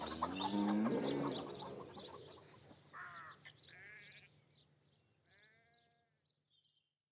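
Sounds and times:
hens clucking in a farmyard: 0:00.0 - 0:02.9
bleating-like cry: 0:03.1 - 0:04.3, 0:05.3 - 0:06.0.

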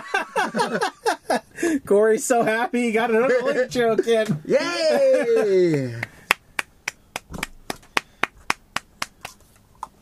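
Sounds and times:
laughter: 0:00.0 - 0:01.6, 0:03.3 - 0:06.2
speech: 0:00.3 - 0:06.1
light crisp hand claps: 0:05.7 - 0:09.4.

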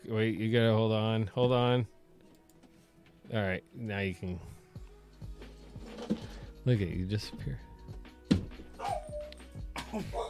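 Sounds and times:
speech: 0:00.1 - 0:02.0, 0:03.3 - 0:04.6, 0:06.1 - 0:07.7, 0:09.9 - 0:10.2
dog whimpering and whining: 0:08.8 - 0:09.4.

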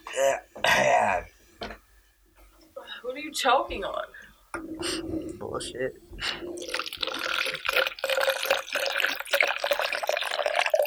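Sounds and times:
speech: 0:00.2 - 0:01.7, 0:03.1 - 0:06.9
person drinking water: 0:06.2 - 0:10.8
gulping: 0:06.3 - 0:10.8.

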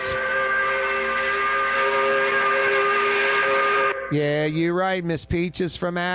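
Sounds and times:
quitting-time whistle blowing: 0:00.0 - 0:04.3
speech: 0:04.1 - 0:06.1.

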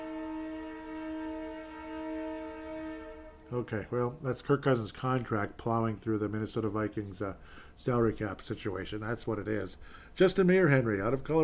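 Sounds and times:
train horn blast: 0:00.0 - 0:03.9
speech: 0:03.5 - 0:11.4.

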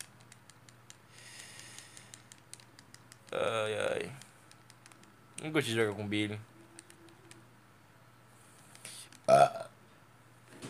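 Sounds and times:
low steady hum: 0:00.0 - 0:10.6
speech: 0:03.3 - 0:04.2, 0:05.4 - 0:06.5
person burping: 0:09.3 - 0:09.7.

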